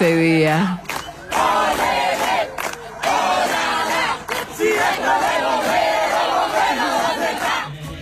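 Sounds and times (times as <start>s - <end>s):
large crowd cheering firefighters in La Rioja: 0.5s - 8.0s
applause for firefighters in La Rioja: 0.7s - 5.8s.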